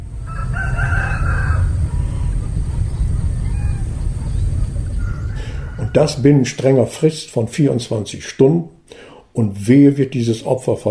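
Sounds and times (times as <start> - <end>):
steady low rumble: 0.0 - 7.6
rooster crowing: 0.1 - 6.4
chicken clucking: 0.3 - 6.2
speech: 6.0 - 10.8.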